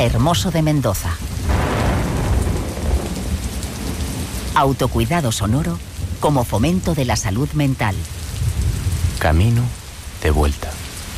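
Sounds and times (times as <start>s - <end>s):
speech: 0.0s - 1.6s, 4.6s - 8.2s, 9.2s - 10.8s
heavy rain: 0.0s - 11.1s
deep rolling thunder: 1.2s - 6.4s, 8.1s - 10.1s.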